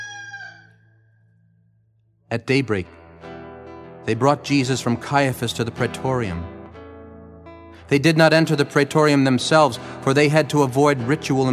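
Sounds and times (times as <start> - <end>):
rooster crowing: 0.0 - 0.7
speech: 2.3 - 3.0, 4.0 - 6.6, 7.9 - 11.5.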